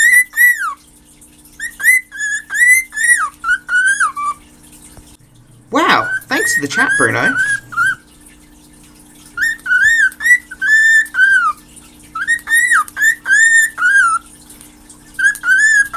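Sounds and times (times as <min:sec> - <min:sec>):
rehomed pet companion bird whistling and warbling: 0:00.0 - 0:00.8, 0:01.6 - 0:04.4, 0:05.7 - 0:08.0, 0:09.3 - 0:14.4, 0:15.1 - 0:15.9
speech: 0:06.6 - 0:07.5.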